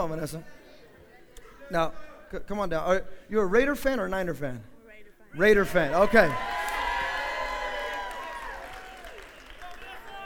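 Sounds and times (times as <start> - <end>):
speech: 0.0 - 0.6, 1.7 - 4.7, 5.3 - 6.5
crowd cheering and whooping: 5.8 - 10.2.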